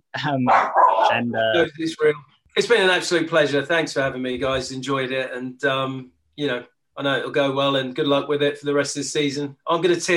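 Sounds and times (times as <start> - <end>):
speech: 0.1 - 10.1
dog barking: 0.5 - 1.4.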